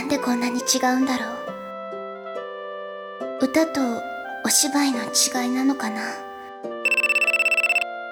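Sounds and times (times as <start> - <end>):
speech: 0.1 - 1.5, 3.4 - 6.3
phone ringtone electronic warbles: 6.9 - 7.9.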